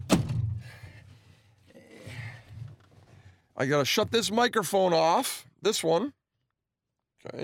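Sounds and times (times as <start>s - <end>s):
van door slamming shut: 0.0s - 0.6s
low rumbling and shuffling of something shifting: 0.4s - 4.4s
speech: 3.6s - 6.2s, 7.2s - 7.4s.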